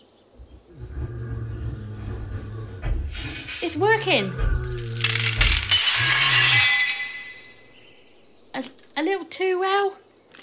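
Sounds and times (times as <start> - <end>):
low hum: 0.4 - 9.0
speech: 3.3 - 4.5, 9.3 - 10.0
bright tinkling spray of glass shards: 4.9 - 7.8
pane of glass shattering with a sharp crash: 4.9 - 7.8.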